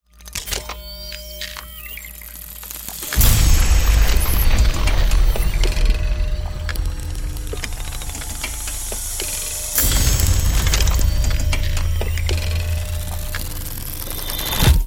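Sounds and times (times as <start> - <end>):
explosion: 3.2 - 14.8.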